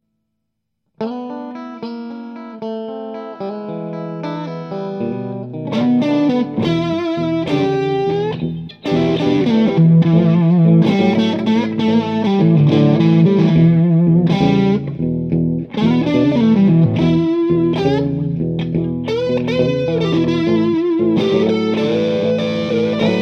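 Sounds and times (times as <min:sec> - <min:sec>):
blues guitar: 0:01.0 - 0:23.2.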